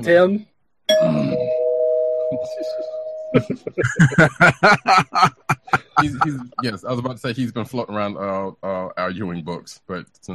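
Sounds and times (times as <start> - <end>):
speech: 0.0 - 1.6, 2.3 - 10.3
bright bell ding used as a spoiler warning: 0.9 - 3.6
people laughing: 3.4 - 9.3.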